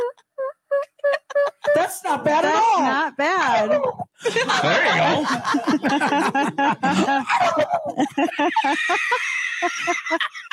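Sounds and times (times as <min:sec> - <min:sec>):
people imitating turkey gobbles with their voices: 0:00.0 - 0:02.0
laughter: 0:00.8 - 0:02.8, 0:03.4 - 0:10.5
speech: 0:01.9 - 0:07.6, 0:08.4 - 0:09.5.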